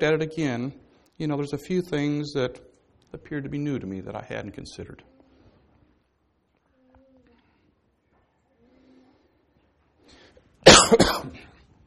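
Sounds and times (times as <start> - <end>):
speech: 0.0 - 5.1, 10.8 - 11.5
single harsh cough: 10.6 - 11.6.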